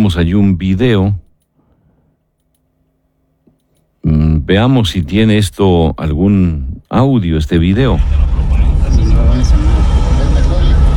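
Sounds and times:
speech: 0.0s - 1.2s, 4.1s - 8.5s
indistinct voices murmuring: 8.0s - 10.9s
road traffic rumble: 8.0s - 10.9s.

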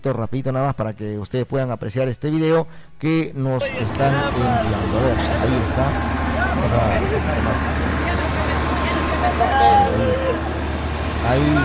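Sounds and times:
speech: 0.0s - 8.0s, 9.2s - 10.6s, 11.2s - 11.6s
crowd murmuring at a road accident scene: 3.6s - 11.6s
faint tonal whines: 3.6s - 11.6s
roadside engine and traffic rumble at a road accident scene: 3.6s - 11.6s.

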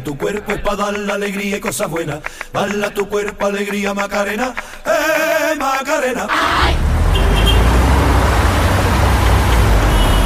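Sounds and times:
speech: 0.1s - 6.8s
cars and trucks idling and rumbling in a traffic jam: 6.3s - 10.2s.

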